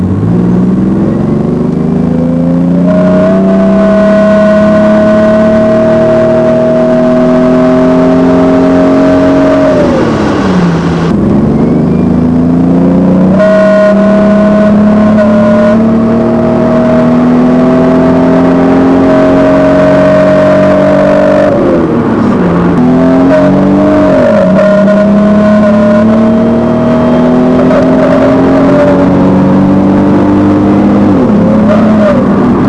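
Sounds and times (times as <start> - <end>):
death whine: 0.0 - 32.6.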